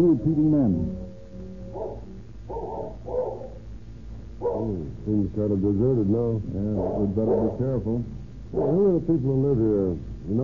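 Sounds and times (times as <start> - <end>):
speech: 0.0 - 1.0, 4.6 - 10.4
low hum: 0.0 - 10.4
cur dog barking fiercely: 1.7 - 3.6, 4.4 - 4.8, 6.7 - 7.7, 8.5 - 8.9.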